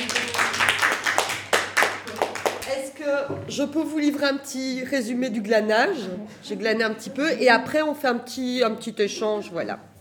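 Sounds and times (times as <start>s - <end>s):
small audience applauding: 0.0s - 2.7s
speech: 3.2s - 9.9s.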